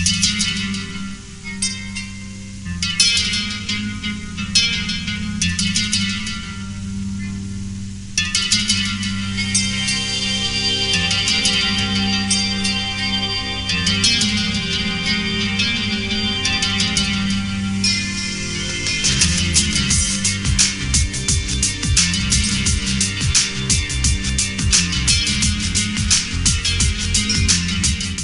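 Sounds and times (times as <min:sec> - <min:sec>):
guitar ringtone: 0:00.0 - 0:28.2.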